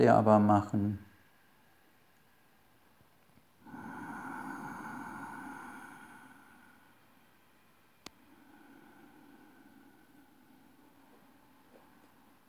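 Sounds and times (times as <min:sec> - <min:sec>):
speech: 0:00.0 - 0:01.1
ujjayi breath through a constricted throat during stretching: 0:03.6 - 0:07.4, 0:08.0 - 0:12.4.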